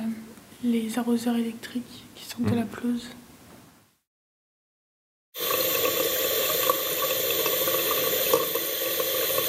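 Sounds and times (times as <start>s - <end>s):
speech: 0.6s - 3.2s
water gushing from a kitchen tap in a nursing home: 5.4s - 9.4s.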